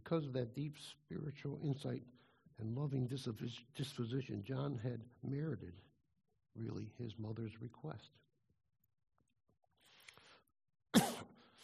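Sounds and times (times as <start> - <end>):
speech: 0.1 - 5.9, 6.6 - 8.3
soft breathy inhale: 2.2 - 2.5
forceful cough with rasping tail: 10.9 - 11.4.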